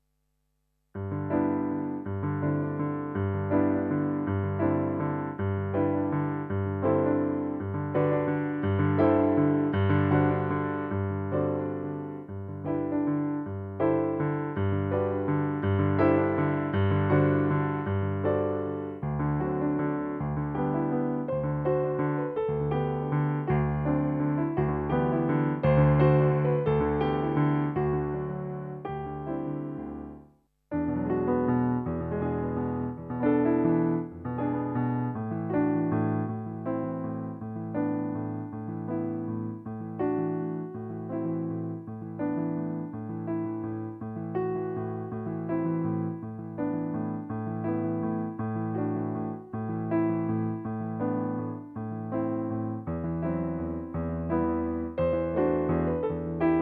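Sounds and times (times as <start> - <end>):
solo piano song: 0.0 - 56.6.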